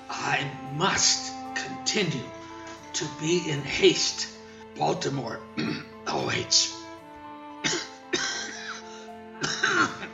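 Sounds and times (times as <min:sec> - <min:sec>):
speech: 0:00.2 - 0:06.8, 0:07.6 - 0:07.9
elderly man clearing his throat with a strained rasp: 0:05.6 - 0:06.0, 0:07.6 - 0:08.8, 0:09.4 - 0:10.1.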